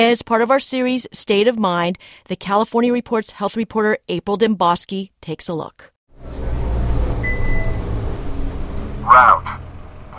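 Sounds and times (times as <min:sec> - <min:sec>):
speech: 0:00.0 - 0:06.4, 0:09.1 - 0:09.6
city bus engine drone: 0:06.1 - 0:10.1
faint whine: 0:06.2 - 0:10.1
city bus air brakes squealing: 0:06.4 - 0:09.1.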